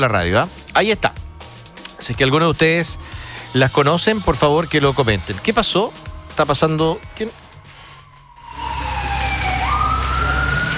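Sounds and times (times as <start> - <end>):
speech: 0.0 - 1.2, 2.0 - 7.4
Carabineros police patrol car siren on a speeding vehicle: 4.3 - 5.4, 7.7 - 10.7
heavy rumble of traffic and engine noise: 8.6 - 10.7.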